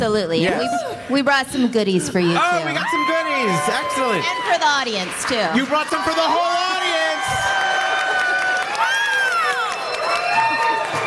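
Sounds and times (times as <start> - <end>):
speech: 0.0 - 7.5
large crowd cheering and whooping: 2.4 - 11.0
large crowd clapping: 4.0 - 11.0.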